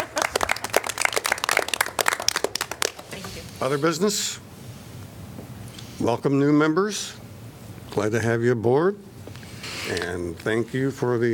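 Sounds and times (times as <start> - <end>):
small group of meeting attendees applauding: 0.0 - 3.4
speech: 3.6 - 4.5, 6.0 - 7.2, 7.9 - 9.1, 9.9 - 11.3.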